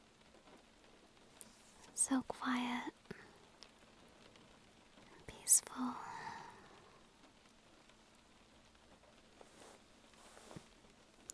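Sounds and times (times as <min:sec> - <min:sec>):
rain hitting a windowsill: 0:00.0 - 0:11.3
speech: 0:02.0 - 0:03.0, 0:05.5 - 0:06.2.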